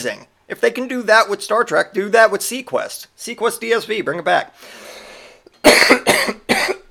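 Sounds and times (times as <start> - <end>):
speech: 0.0 - 5.0, 5.6 - 6.4
loud harsh coughs: 5.6 - 6.8.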